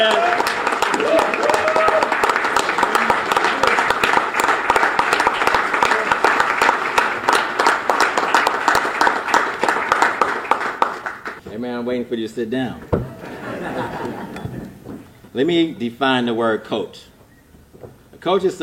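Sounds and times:
large crowd applauding in a standing ovation for a baseball coach: 0.0 - 11.4
speech: 12.1 - 13.1, 15.4 - 17.1, 18.2 - 18.6
laughter: 13.1 - 14.8.

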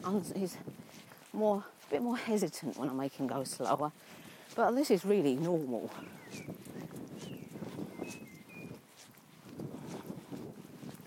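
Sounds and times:
speech: 0.0 - 7.0
wind blowing outdoors: 0.0 - 11.0
faint bird chirps: 6.0 - 8.8.

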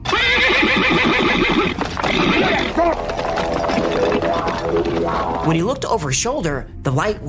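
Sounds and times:
horse neighing: 0.0 - 5.6
horse hooves galloping: 0.1 - 5.9
speech: 0.9 - 3.3, 4.0 - 7.2.

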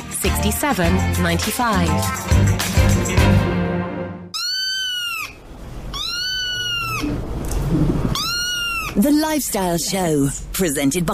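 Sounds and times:
speech: 0.2 - 3.6, 9.0 - 11.1
kitten meowing: 4.4 - 7.2, 8.1 - 9.0.

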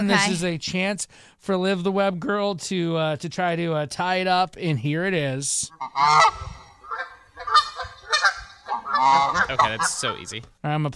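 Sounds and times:
speech: 0.0 - 6.6, 9.0 - 10.9
goose honking: 5.7 - 10.4.

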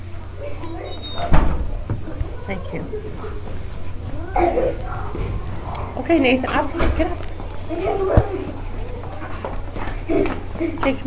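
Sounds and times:
faint murmur: 0.0 - 11.0
low room hum: 0.0 - 11.0
door pushed open and held: 1.1 - 1.7
thud and rattle: 1.3 - 2.4, 4.5 - 7.2
speech: 2.5 - 8.4, 10.1 - 11.0.

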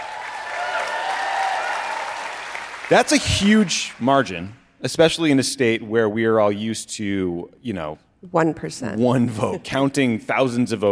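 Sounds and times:
live audience applause at a political interview: 0.0 - 4.5
speech: 2.9 - 10.8.

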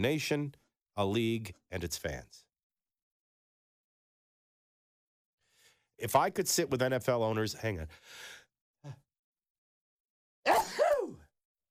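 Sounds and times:
speech: 0.0 - 2.5, 6.0 - 9.0
person sneezing: 10.5 - 11.2.

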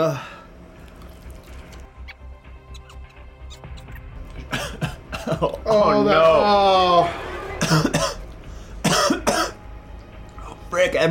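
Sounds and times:
speech: 0.0 - 0.4, 5.4 - 7.9, 10.8 - 11.0
person coughing after eating hot chili sauce: 4.4 - 5.6, 7.6 - 8.2, 8.8 - 9.6.

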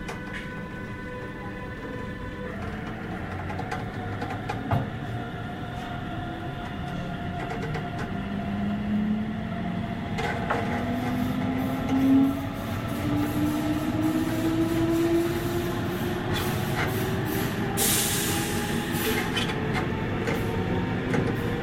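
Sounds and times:
departing train rolling rumble: 0.0 - 21.6.

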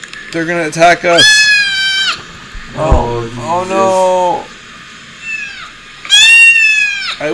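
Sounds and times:
speech: 0.3 - 1.5, 2.8 - 4.5
many cats meowing: 1.1 - 2.2, 5.2 - 7.3.

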